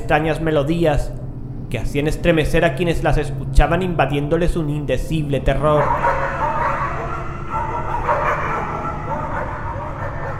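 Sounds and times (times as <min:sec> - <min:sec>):
dense droning background: 0:00.0 - 0:10.3
speech: 0:00.1 - 0:06.2
dogs barking: 0:05.6 - 0:10.3.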